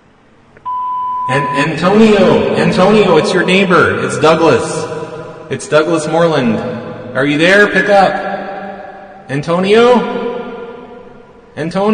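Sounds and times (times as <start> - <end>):
answering machine beep: 0.6 - 1.8
speech: 1.3 - 8.3, 9.3 - 10.2, 11.6 - 11.9.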